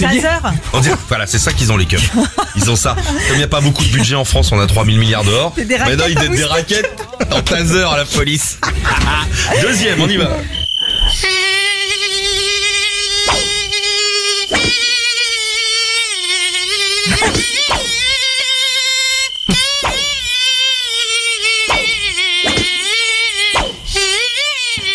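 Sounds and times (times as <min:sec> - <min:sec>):
laughter: 0:00.0 - 0:11.2, 0:17.0 - 0:21.6
speech: 0:00.0 - 0:11.3, 0:17.1 - 0:17.6
mosquito buzzing: 0:09.7 - 0:24.9.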